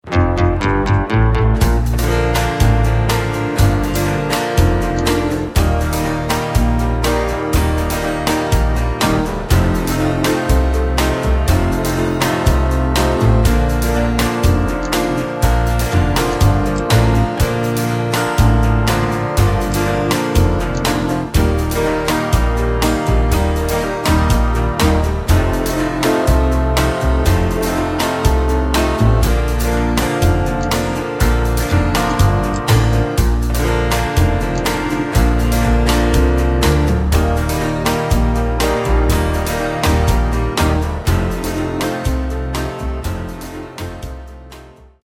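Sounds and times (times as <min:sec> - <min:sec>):
backing track in Bb to C without backing vocals: 0:00.0 - 0:45.0.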